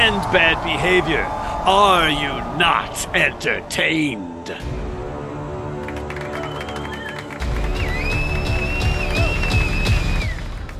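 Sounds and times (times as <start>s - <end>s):
audience applause: 0.0s - 3.8s, 5.5s - 10.7s
speech: 0.2s - 4.8s
high whistle: 6.3s - 10.5s.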